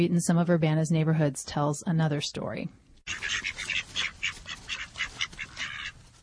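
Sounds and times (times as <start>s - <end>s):
speech: 0.0s - 3.6s
bantam ducks quacking: 3.1s - 6.2s.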